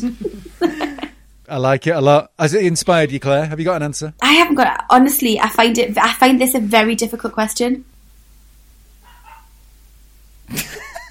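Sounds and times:
speech: 0:00.0 - 0:00.8, 0:01.5 - 0:07.9, 0:10.5 - 0:10.8
laughter: 0:00.0 - 0:01.1, 0:10.5 - 0:11.0
faint dog bark with yelping tail: 0:09.0 - 0:09.7.

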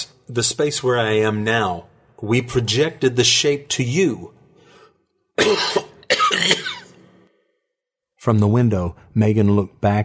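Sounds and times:
speech: 0:00.3 - 0:04.4, 0:05.4 - 0:06.5, 0:08.2 - 0:10.0
harsh raspy painful coughs: 0:05.4 - 0:07.2.

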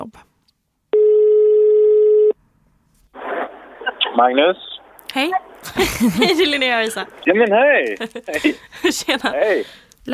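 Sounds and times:
ringback tone on an outgoing telephone call: 0:01.0 - 0:02.4
speech: 0:04.2 - 0:10.1
laughter: 0:05.6 - 0:09.6.

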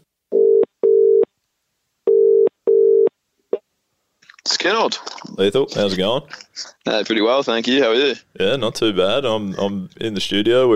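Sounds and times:
telephone ringing tone heard down the line while placing a call: 0:00.3 - 0:01.3, 0:02.1 - 0:03.1
speech: 0:04.6 - 0:10.7.

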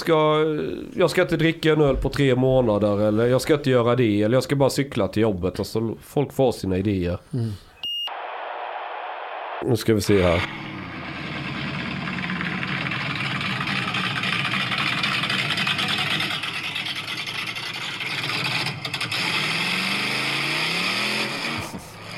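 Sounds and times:
speech: 0:00.0 - 0:07.7, 0:09.6 - 0:10.8
car engine running and revving: 0:10.4 - 0:22.1.

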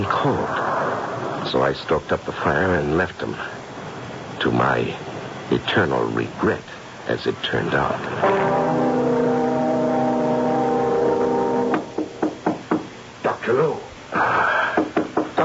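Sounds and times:
speech: 0:00.0 - 0:00.6, 0:01.5 - 0:03.6, 0:04.4 - 0:08.6, 0:13.5 - 0:14.3
steady droning tone: 0:08.2 - 0:12.0
sharp raps on a door: 0:11.8 - 0:12.9, 0:14.8 - 0:15.4.

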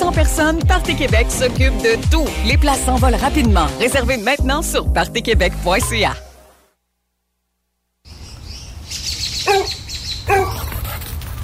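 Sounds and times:
speech: 0:00.0 - 0:06.2
birds chirping: 0:08.1 - 0:11.4
dog barking: 0:09.5 - 0:10.7.

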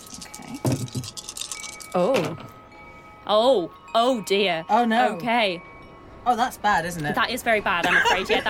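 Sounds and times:
four small dice rattling across a hard surface: 0:00.0 - 0:01.8
speech: 0:02.0 - 0:02.5, 0:03.3 - 0:08.4
laughter: 0:07.8 - 0:08.4.

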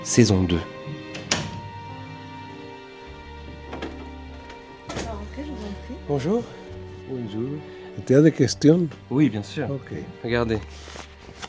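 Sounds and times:
speech: 0:00.0 - 0:00.8, 0:06.1 - 0:11.0
apartment door latch and handle knocks and clunks: 0:01.1 - 0:01.7.

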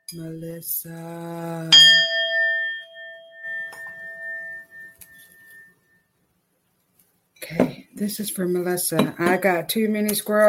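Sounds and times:
speech: 0:00.1 - 0:02.2, 0:08.0 - 0:10.4
small bell struck once: 0:01.8 - 0:06.0.

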